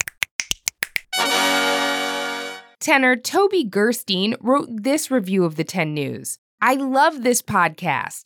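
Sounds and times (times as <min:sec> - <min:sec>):
crisp finger snaps: 0:00.0 - 0:01.1
bright sustained musical tone: 0:01.2 - 0:02.8
speech: 0:02.8 - 0:08.2.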